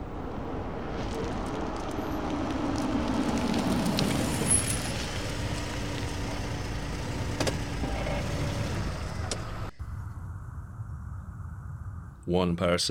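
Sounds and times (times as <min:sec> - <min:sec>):
car engine rumbling as it slows and pulls over to a stop: 0:00.0 - 0:10.2
low road noise: 0:00.0 - 0:10.3
speech: 0:12.3 - 0:12.8.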